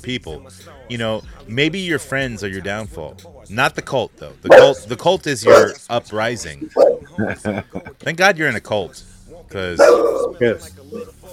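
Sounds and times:
speech: 0:00.0 - 0:11.3
dog barking sharply: 0:04.5 - 0:05.8, 0:06.7 - 0:07.2, 0:09.8 - 0:10.6
dog yipping softly: 0:04.5 - 0:05.8, 0:06.6 - 0:07.1, 0:09.8 - 0:10.4
laughter: 0:06.6 - 0:08.1.

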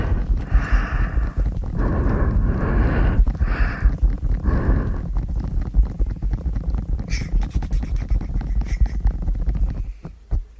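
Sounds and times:
breathy blowing into ears: 0:00.0 - 0:05.7
rapid soft tapping and rustling: 0:00.0 - 0:10.5.

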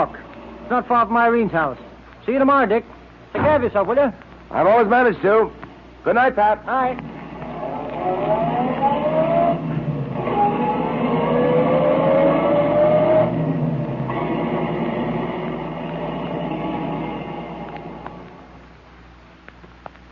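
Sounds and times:
speech: 0:00.0 - 0:07.1, 0:08.0 - 0:09.0
car engine droning through gear changes: 0:07.0 - 0:18.7.

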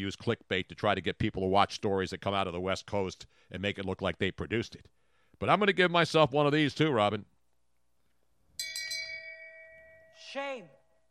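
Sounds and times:
speech: 0:00.0 - 0:07.3, 0:10.3 - 0:10.8
bright bell struck and ringing: 0:08.6 - 0:11.1.

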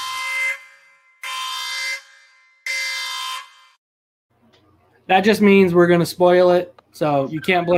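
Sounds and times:
loud harsh buzzer: 0:00.0 - 0:03.8
speech: 0:05.1 - 0:07.7.

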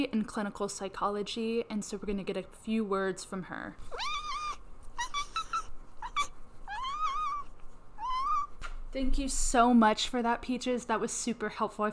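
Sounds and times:
speech: 0:00.0 - 0:04.2, 0:08.9 - 0:11.9
cat meowing: 0:03.9 - 0:08.5.

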